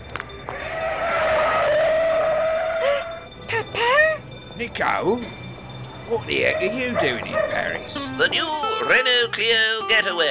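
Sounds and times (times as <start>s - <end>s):
car skidding to a stop with tire squeal in Paris: 0.5s - 3.4s, 6.0s - 10.0s
speech: 4.6s - 5.5s, 6.1s - 10.2s.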